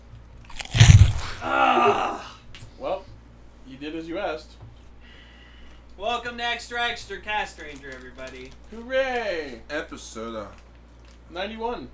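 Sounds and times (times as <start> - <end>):
person biting into crisp food: 0.5 - 1.5
person groaning or murmuring while chewing: 0.5 - 2.2
speech: 6.0 - 10.6, 11.3 - 11.9.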